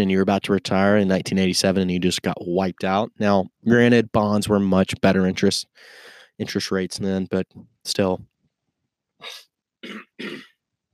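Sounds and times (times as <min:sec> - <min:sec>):
speech: 0:00.0 - 0:08.3, 0:09.2 - 0:10.5
person clearing throat: 0:09.2 - 0:10.6.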